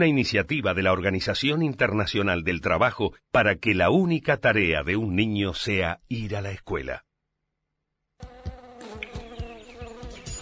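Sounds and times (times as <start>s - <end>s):
speech: 0.0s - 7.1s
mosquito buzzing: 8.2s - 10.4s.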